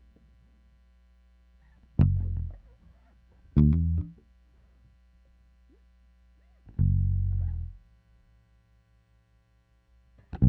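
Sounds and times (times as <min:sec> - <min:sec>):
bass playing: 0:02.0 - 0:02.6, 0:03.6 - 0:04.2, 0:06.8 - 0:07.8.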